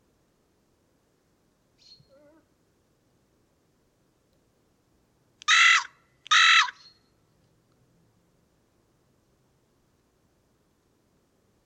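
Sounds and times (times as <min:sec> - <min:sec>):
Carrion crow Corvus corone rasping caws: 0:05.5 - 0:06.8.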